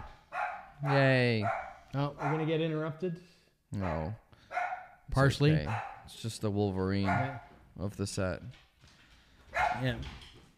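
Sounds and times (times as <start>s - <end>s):
dog barking: 0.0s - 2.7s, 3.8s - 5.0s, 5.6s - 6.1s, 7.0s - 7.6s, 9.5s - 10.0s
speech: 0.8s - 4.2s, 5.1s - 8.6s, 9.7s - 10.3s.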